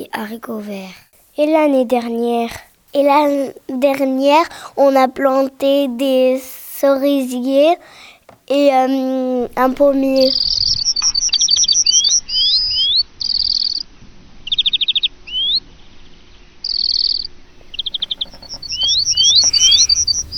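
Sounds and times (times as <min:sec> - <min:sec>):
speech: 0:00.0 - 0:10.8
soft low rumble: 0:09.3 - 0:10.6, 0:17.6 - 0:20.3
small birds chirping and tweeting at a garden bird feeder: 0:09.4 - 0:13.8, 0:17.6 - 0:20.3.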